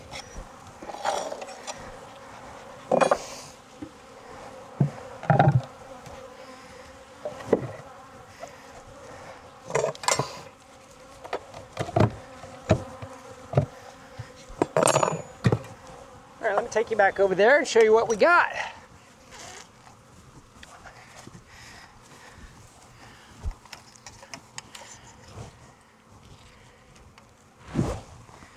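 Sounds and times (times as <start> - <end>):
bees buzzing around an open beehive during an inspection: 0.0 - 27.6
clunks and taps from handling the beehive: 0.1 - 4.0, 4.7 - 6.3, 7.2 - 9.0, 9.6 - 16.9
speech: 16.7 - 18.7.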